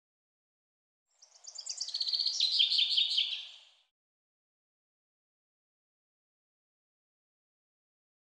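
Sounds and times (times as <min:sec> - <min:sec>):
common chaffinch song: 0:01.1 - 0:03.9.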